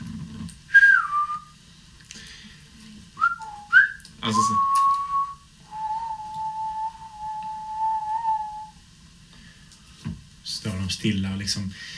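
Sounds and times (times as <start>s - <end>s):
person whistling to call animals: 0.7s - 1.5s, 3.2s - 8.8s
speech: 4.3s - 4.7s, 11.0s - 11.9s.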